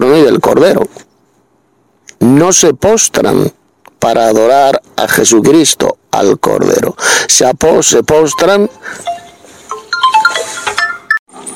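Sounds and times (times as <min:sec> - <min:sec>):
speech: 0:00.5 - 0:01.1, 0:02.2 - 0:09.2
phone ringing with melodic electronic tones: 0:08.3 - 0:11.2.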